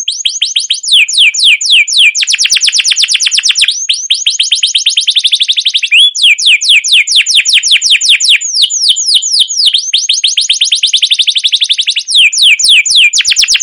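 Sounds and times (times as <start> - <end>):
canary singing loud and high: 0.0 - 13.6.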